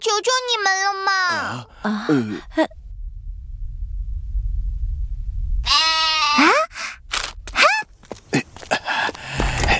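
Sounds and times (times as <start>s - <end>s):
speech: 0.0s - 2.8s
low rumble: 0.3s - 8.3s
goat bleating: 5.6s - 6.6s.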